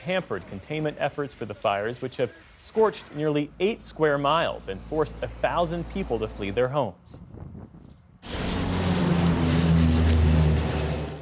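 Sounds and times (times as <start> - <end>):
speech: 0.0 - 7.7
water-dumping firefighting propeller plane flying overhead: 8.2 - 11.1.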